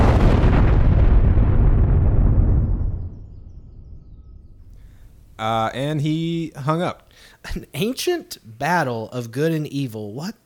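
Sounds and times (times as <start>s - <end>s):
deep explosion booming: 0.0s - 5.8s
speech: 5.4s - 10.4s.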